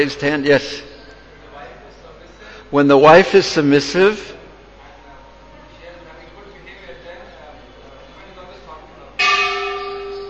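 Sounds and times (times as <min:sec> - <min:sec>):
speech: 0:00.0 - 0:00.9, 0:02.7 - 0:04.4
single bell ringing: 0:09.2 - 0:10.2.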